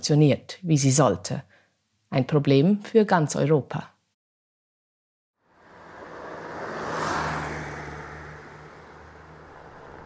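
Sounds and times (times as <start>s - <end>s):
speech: 0.0s - 1.5s, 2.1s - 3.9s
small white car driving past at the Kapitan Andrevo border crossing: 5.4s - 10.0s
low rumble of idling traffic at a border crossing: 5.5s - 10.0s.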